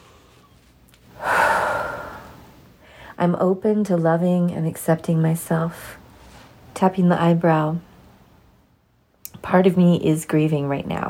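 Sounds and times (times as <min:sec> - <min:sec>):
big deep breath during a guided tapping exercise: 0:01.2 - 0:03.2
speech: 0:03.2 - 0:06.0, 0:06.8 - 0:07.9, 0:09.4 - 0:11.0.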